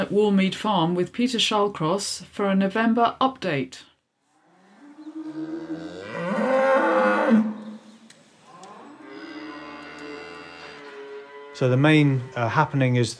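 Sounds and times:
speech: 0.0s - 3.9s, 5.3s - 5.8s, 11.6s - 13.1s
cattle mooing indoors for winter on a farm in Tisbury Wiltshire: 4.4s - 7.8s, 8.5s - 12.9s.

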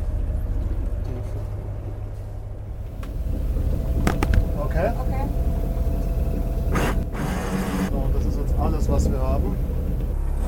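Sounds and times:
low rumble of a sailing boat heading out of a bay: 0.0s - 10.3s
wind buffeting a sailing boat heading out of a bay: 2.6s - 10.2s.

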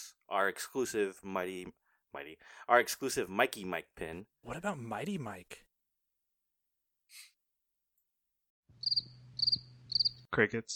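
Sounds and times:
speech: 0.3s - 5.7s, 10.4s - 10.7s
crickets chirping: 8.8s - 10.2s.

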